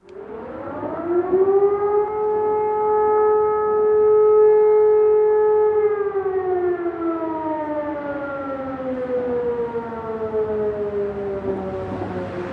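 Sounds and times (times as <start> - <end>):
siren wailing: 0.0 - 12.5.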